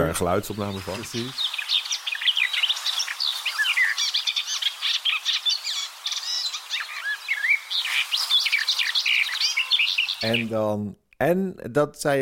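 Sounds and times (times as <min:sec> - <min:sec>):
speech: 0:00.0 - 0:01.7, 0:10.2 - 0:12.2
songbird singing a fast babbling blackbird-like song: 0:00.0 - 0:10.7.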